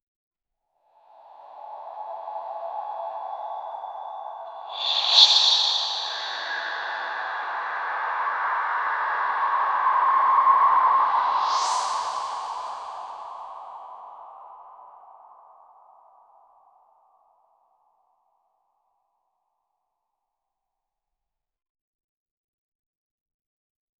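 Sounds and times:
whisper-like transition: 0:04.5 - 0:13.0.

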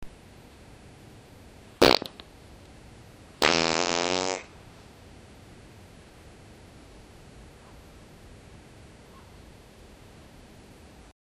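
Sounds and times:
short loud fart: 0:01.8 - 0:02.2, 0:03.4 - 0:04.5.

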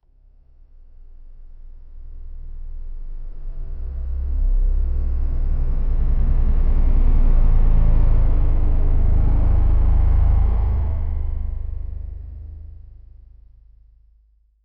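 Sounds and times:
cinematic slow motion aeronautics sound: 0:00.0 - 0:14.1.

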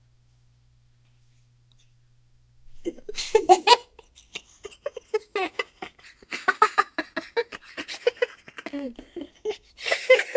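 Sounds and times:
cartoon giantess laughing: 0:02.9 - 0:10.3.

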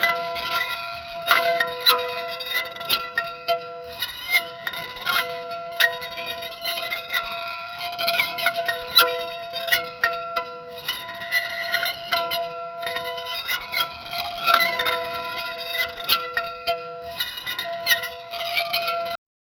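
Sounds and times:
old rusty metal disc spinning: 0:00.0 - 0:19.2.

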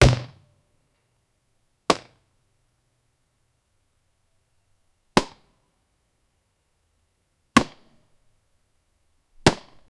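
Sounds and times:
bullet hitting normal target: 0:00.0 - 0:00.4, 0:01.9 - 0:02.2, 0:05.2 - 0:05.5, 0:07.6 - 0:08.0, 0:09.4 - 0:09.9.

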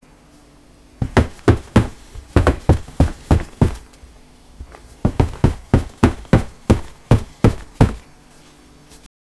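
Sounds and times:
jumping on a bed: 0:01.0 - 0:08.1.

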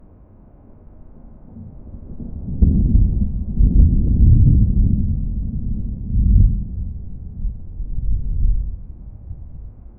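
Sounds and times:
thunder rumbling: 0:01.6 - 0:09.8.

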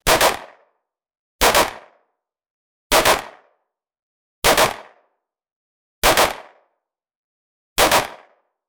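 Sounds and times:
realistic 9mm pistol shot: 0:00.0 - 0:00.7, 0:01.4 - 0:02.0, 0:02.9 - 0:03.6, 0:04.4 - 0:05.0, 0:06.0 - 0:06.7, 0:07.8 - 0:08.4.

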